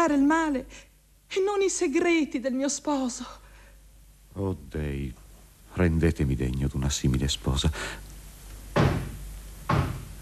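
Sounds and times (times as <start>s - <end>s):
speech: 0.0s - 3.4s, 4.4s - 5.2s, 5.8s - 8.1s
heavy resonant knocks on a door: 8.7s - 10.2s.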